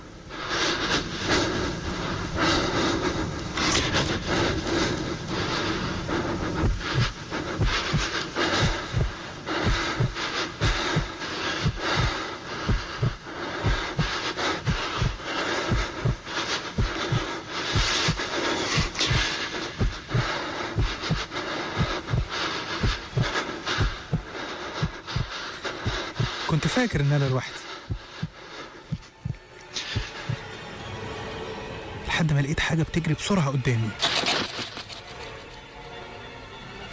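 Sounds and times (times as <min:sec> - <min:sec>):
panting breaths of someone alone in pitch darkness at night: 0:00.3 - 0:30.4
heartbeat of someone alone in pitch darkness at night: 0:01.0 - 0:30.5
speech: 0:26.8 - 0:27.4, 0:32.5 - 0:34.3.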